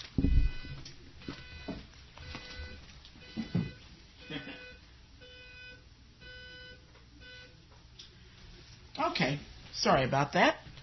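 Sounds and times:
faint electronic alarm buzzing: 0.2s - 7.6s
speech: 9.8s - 10.6s.

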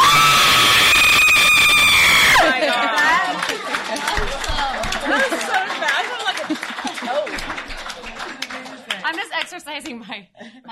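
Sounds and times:
woman performing a horror-movie scream: 0.0s - 2.5s
overlapping voices: 2.2s - 10.1s
laughter: 2.4s - 4.2s, 5.0s - 7.6s
speech: 9.7s - 10.6s.

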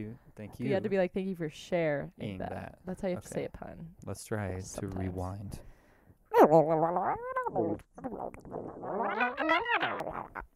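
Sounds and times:
speech: 0.0s - 5.7s, 6.4s - 10.5s
voice imitating cats with meows and yowls: 9.0s - 10.4s.

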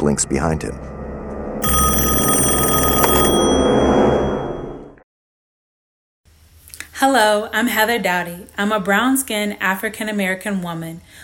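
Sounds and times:
speech: 0.0s - 0.9s, 7.0s - 11.2s
loud metallic telephone bell ringing: 1.6s - 5.0s.

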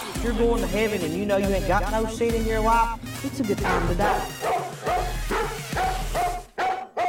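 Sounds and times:
speech: 0.2s - 4.5s
dog barking: 3.6s - 7.0s.

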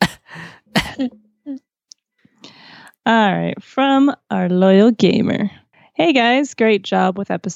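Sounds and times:
person coughing harshly: 0.0s - 1.2s
speech: 0.4s - 1.6s, 3.1s - 7.5s.

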